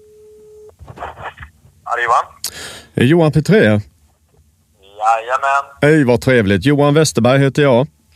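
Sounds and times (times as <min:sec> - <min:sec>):
telephone ringing tone as a call is placed: 0:00.0 - 0:00.7
people talking over the phone line: 0:01.0 - 0:02.4, 0:04.8 - 0:06.3
speech: 0:02.0 - 0:03.9, 0:05.1 - 0:08.0.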